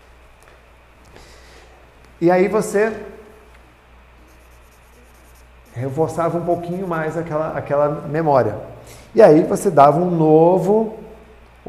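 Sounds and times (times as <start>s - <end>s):
low steady hum: 0.0s - 11.6s
speech: 2.2s - 3.2s, 5.8s - 11.0s
pen scratching across paper in short quick strokes: 4.3s - 7.1s.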